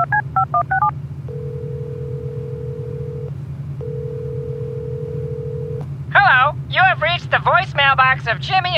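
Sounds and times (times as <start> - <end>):
touch-tone keypad beeps of a phone number being dialed: 0.0 - 4.6
long steady phone ringing tones: 0.0 - 5.8
constant low rumbling hum: 0.0 - 8.7
speech: 7.2 - 8.7.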